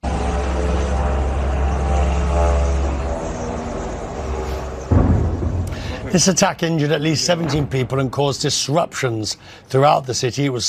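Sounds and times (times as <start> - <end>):
drones flying overhead during a drone attack on Moscow: 0.0 - 8.1
speech: 6.1 - 10.6.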